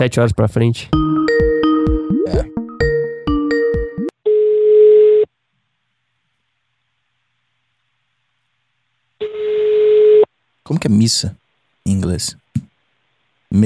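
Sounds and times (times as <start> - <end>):
speech: 0.0 - 1.4, 2.3 - 2.5, 10.7 - 12.7
telephone ringing tone on an international call: 3.5 - 5.3, 9.2 - 10.3.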